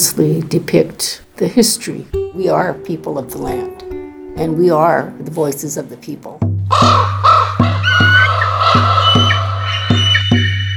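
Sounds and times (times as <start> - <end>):
speech: 0.0 - 7.2
raven croaking in flight above a village: 6.7 - 10.7.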